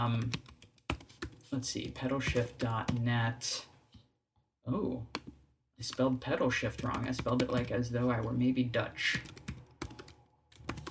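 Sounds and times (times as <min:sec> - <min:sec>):
speech: 0:00.0 - 0:00.5, 0:01.5 - 0:03.7, 0:04.7 - 0:05.2, 0:05.8 - 0:09.4
computer keyboard typing with sharp clicks: 0:00.1 - 0:03.1, 0:06.7 - 0:07.8, 0:09.1 - 0:10.9.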